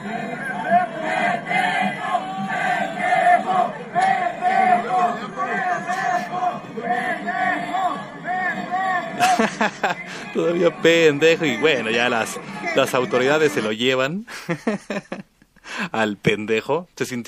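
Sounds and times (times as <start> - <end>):
large stadium crowd yelling and jeering at a fallen fan: 0.0 - 13.7
laughter: 0.0 - 13.7, 14.3 - 15.9
speech: 10.4 - 15.2, 16.0 - 17.2.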